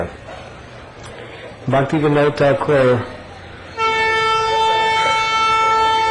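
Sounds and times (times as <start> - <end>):
speech: 0.0 - 0.2, 1.6 - 3.2
low rumble of train on an active railway: 3.1 - 6.1
train horn on an active railway: 3.8 - 6.1.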